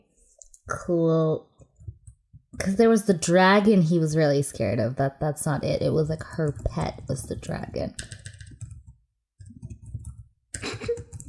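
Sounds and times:
speech: 0.7s - 1.6s, 2.6s - 8.2s
rapid keyboard typing: 1.6s - 4.1s, 5.4s - 11.2s.

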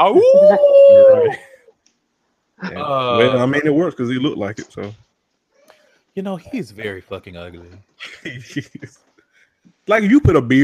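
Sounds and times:
person imitating a creepy cartoon wolf howl: 0.0s - 1.4s
speech: 0.0s - 1.5s, 2.6s - 5.0s, 6.2s - 10.6s.

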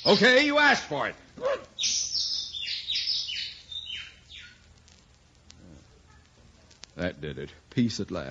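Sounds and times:
speech: 0.0s - 1.6s, 7.0s - 8.2s
bird chirping at a window: 0.0s - 4.8s.

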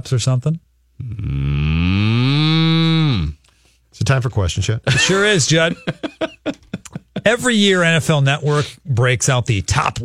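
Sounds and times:
speech: 0.0s - 1.8s, 4.0s - 6.6s, 7.2s - 10.0s
cow mooing: 1.3s - 3.4s
laughter: 4.9s - 7.4s.

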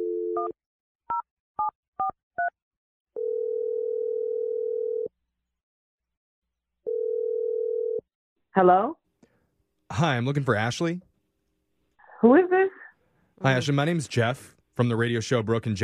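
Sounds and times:
telephone ringback tones: 3.2s - 5.1s, 6.9s - 8.0s
speech: 8.6s - 9.0s, 10.0s - 11.1s, 12.2s - 12.8s, 13.4s - 15.8s.

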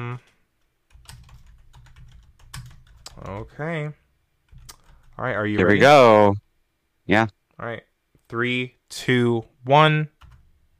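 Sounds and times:
typing on a computer keyboard: 0.3s - 3.5s, 4.5s - 5.2s, 10.2s - 10.5s
speech: 3.2s - 4.0s, 5.2s - 6.4s, 7.1s - 10.2s.

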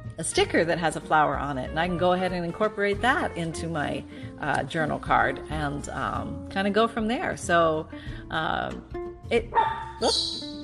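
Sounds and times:
speech: 0.2s - 10.5s
small dog barking: 9.6s - 10.2s.

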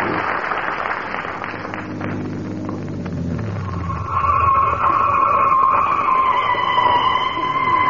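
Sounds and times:
car engine revving at the fairgrounds: 0.2s - 6.1s
car brakes in need of fixing screeching to a stop at the fairgrounds: 1.8s - 7.8s
car tires skidding at the fairgrounds: 2.9s - 7.8s.

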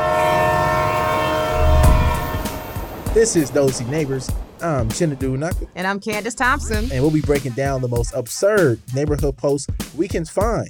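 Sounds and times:
train horn blaring: 0.0s - 7.1s
low rumble of the passing train: 0.0s - 8.0s
speech: 3.2s - 10.6s.

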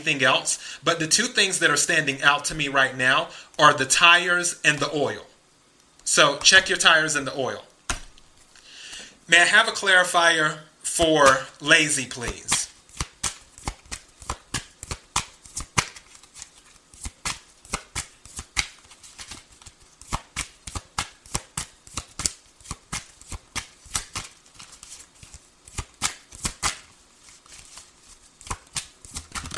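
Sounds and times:
speech: 0.0s - 5.3s, 6.1s - 7.7s, 9.3s - 12.6s
tarot cards being shuffled: 12.2s - 29.5s.

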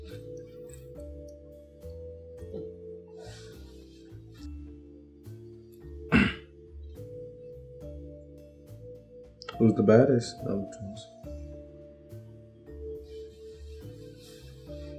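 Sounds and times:
music with sustained tones: 0.0s - 14.9s
loud rough throat clearing: 6.1s - 6.5s
speech: 9.6s - 11.2s.

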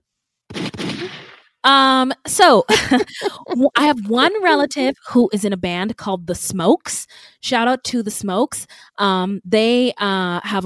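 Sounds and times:
gunshot sound effect: 0.5s - 1.5s
speech: 1.0s - 10.6s.

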